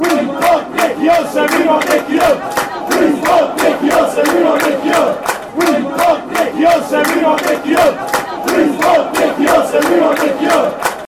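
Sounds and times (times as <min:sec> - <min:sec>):
football fans chanting: 0:00.0 - 0:11.0.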